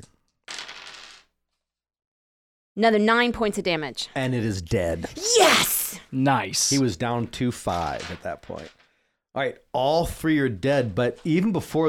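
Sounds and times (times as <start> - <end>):
pair of eight-sided dice clattering across a hard surface: 0.5 - 1.3
speech: 2.8 - 8.8, 9.4 - 11.8.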